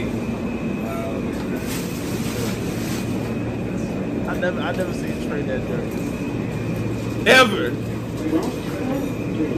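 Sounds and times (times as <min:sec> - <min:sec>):
low rumble and hum of a train car in motion: 0:00.0 - 0:09.5
speech: 0:04.4 - 0:06.2, 0:07.2 - 0:08.6.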